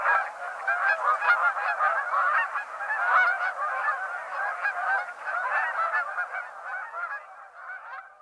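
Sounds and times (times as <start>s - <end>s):
flock of Canada geese honking: 0.0s - 8.1s.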